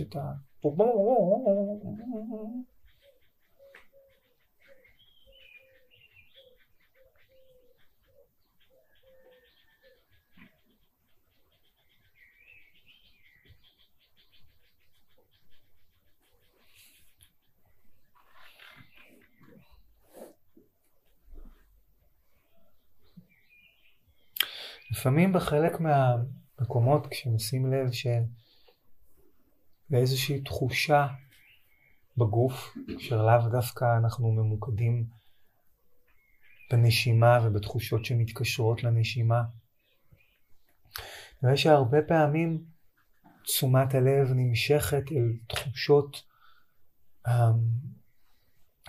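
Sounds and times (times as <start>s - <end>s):
speech: 0.0s - 2.8s, 25.0s - 28.4s, 29.9s - 31.2s, 32.2s - 35.2s, 36.7s - 39.6s, 40.9s - 42.7s, 43.4s - 46.3s, 47.2s - 48.0s
faint bird chirps: 0.0s - 48.8s
dove or turtle dove cooing softly with low hollow notes: 0.6s - 10.6s.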